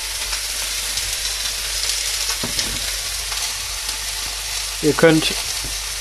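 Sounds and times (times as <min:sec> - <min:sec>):
meat for goulash searing in a hot pan: 0:00.0 - 0:05.9
speech: 0:04.8 - 0:05.5.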